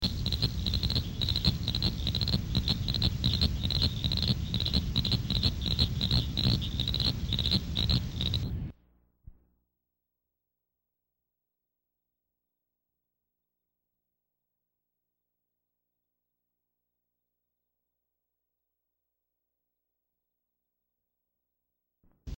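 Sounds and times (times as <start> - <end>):
cricket frog calling: 0.0 - 8.6.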